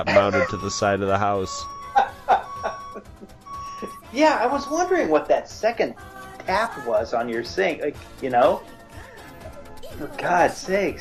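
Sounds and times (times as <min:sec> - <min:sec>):
speech: 0:00.0 - 0:01.8, 0:03.8 - 0:08.8, 0:10.0 - 0:10.9
laughter: 0:00.0 - 0:04.0
electronic beeps from a truck pulling up: 0:00.0 - 0:05.2.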